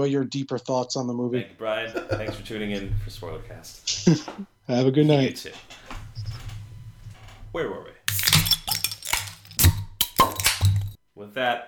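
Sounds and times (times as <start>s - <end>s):
speech: 0.0s - 5.8s, 7.6s - 8.0s, 11.2s - 11.6s
low steady hum: 1.2s - 11.0s
laughter: 1.6s - 4.5s
beer bottle clinks and clatters: 8.1s - 11.0s.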